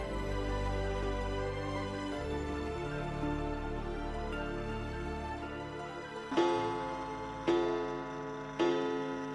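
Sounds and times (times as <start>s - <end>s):
clock chiming melody: 0.0s - 9.3s
clock striking the hour with resonant bongs: 6.3s - 9.3s.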